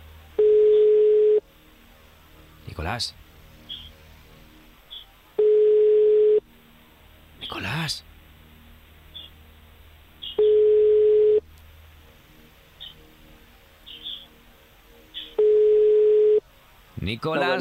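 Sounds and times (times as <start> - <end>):
telephone ringback tone of an unanswered call: 0.4 - 1.4, 5.4 - 6.4, 10.4 - 11.4, 15.4 - 16.4
speech: 2.8 - 3.2, 7.9 - 8.1, 17.1 - 17.5.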